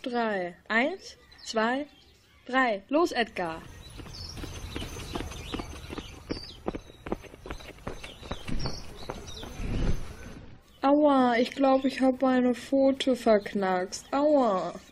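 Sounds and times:
speech: 0.0 - 3.8, 10.9 - 14.9
birds chirping: 0.0 - 14.9
footsteps running downhill: 3.5 - 10.2.

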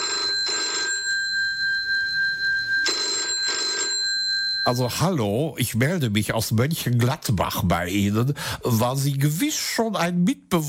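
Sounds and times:
telephone ringing with an incoming call: 0.0 - 4.9
speech: 4.7 - 10.6.

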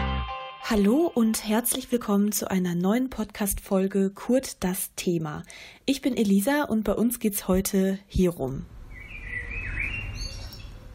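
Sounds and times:
speech: 0.7 - 8.8
birds chirping and singing outdoors: 8.8 - 10.9.

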